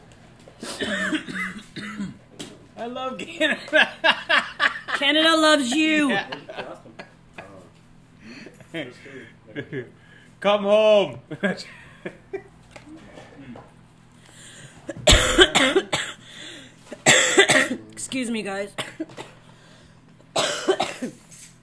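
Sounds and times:
person coughing after smoking from bongs: 0.6s - 2.2s, 15.1s - 16.2s, 17.0s - 17.8s, 20.4s - 21.2s
speech: 2.8s - 4.4s, 5.0s - 6.4s, 8.7s - 12.3s, 18.1s - 19.3s
laughter: 3.4s - 7.6s.

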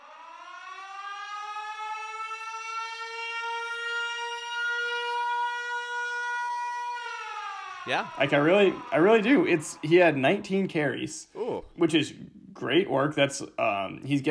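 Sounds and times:
loud sustained alarm siren wailing: 0.0s - 11.0s
speech: 7.9s - 14.2s.

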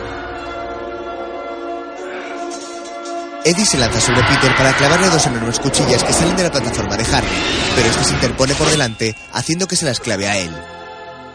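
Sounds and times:
metal rods struck and clanging: 2.4s - 10.0s
speech: 3.4s - 10.8s.

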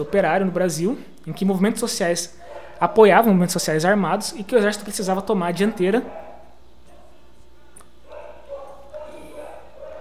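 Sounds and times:
dog barking: 0.0s - 0.5s, 2.2s - 3.2s, 5.6s - 7.3s, 8.0s - 9.9s
speech: 0.0s - 6.3s
steady low hum: 0.0s - 9.9s.

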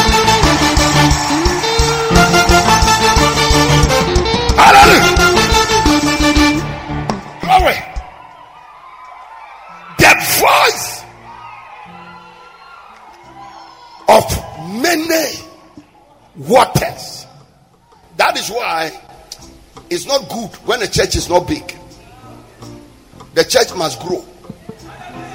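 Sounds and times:
audience screaming and shouting praise: 0.0s - 16.3s, 24.8s - 25.3s
speech: 16.5s - 17.1s, 18.5s - 19.1s, 19.9s - 21.8s, 23.4s - 24.3s.

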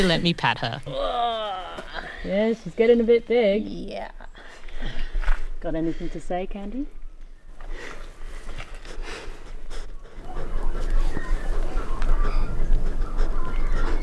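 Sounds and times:
speech: 0.0s - 1.4s, 2.2s - 5.0s, 5.6s - 7.0s
wombat sniffing at a microphone: 8.4s - 14.0s.

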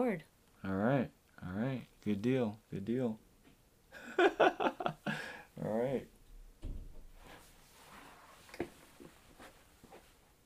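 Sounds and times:
speech: 0.0s - 3.2s, 5.6s - 6.2s
laughter: 4.0s - 5.2s
door pulled shut with a soft thump: 6.6s - 7.2s.

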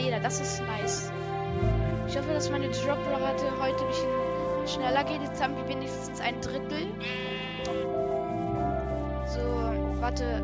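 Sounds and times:
speech: 0.1s - 8.2s, 9.3s - 10.4s
video game sheep bleating: 6.9s - 8.0s.

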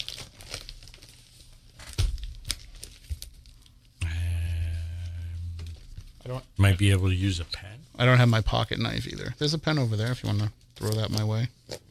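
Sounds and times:
package being torn open without scissors: 0.0s - 3.7s
speech: 6.3s - 11.8s.

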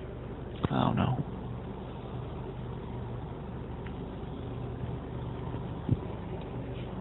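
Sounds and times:
car driving in rush hour traffic: 0.0s - 6.9s
speech: 0.7s - 1.3s.

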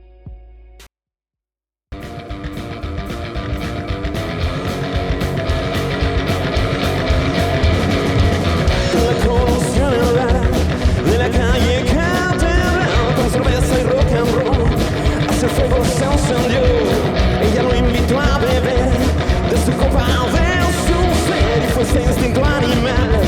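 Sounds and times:
driving drums: 2.0s - 23.2s
full band playing a song: 2.0s - 23.2s
lead vocal line: 6.7s - 23.2s.

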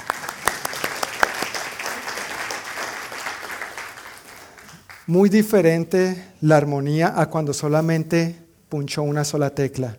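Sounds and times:
audience applause for pianist: 0.0s - 5.1s
speech: 5.1s - 9.9s.

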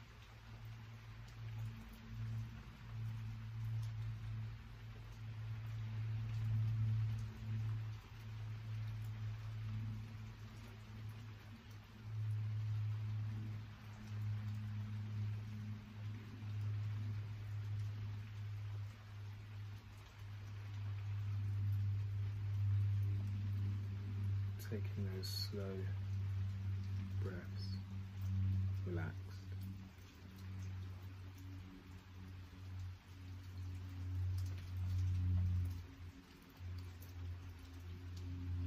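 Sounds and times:
low constant rumbling hum: 0.0s - 38.6s
steady rain falling: 0.0s - 38.6s
speech: 24.7s - 26.0s, 27.2s - 27.9s, 28.8s - 29.2s.

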